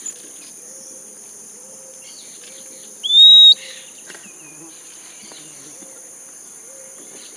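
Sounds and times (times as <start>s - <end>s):
short clear bird whistles: 3.1s - 3.6s.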